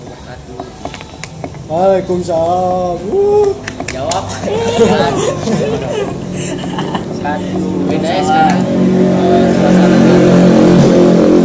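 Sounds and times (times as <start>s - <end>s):
speech: 1.7s - 10.9s
laughter: 3.4s - 7.7s
motorcycle engine revving passing by: 5.5s - 11.4s.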